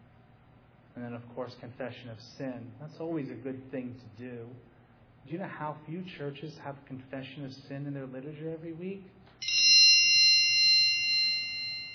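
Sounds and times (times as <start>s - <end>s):
speech: 1.0s - 9.5s
phone notification chime: 9.4s - 11.9s.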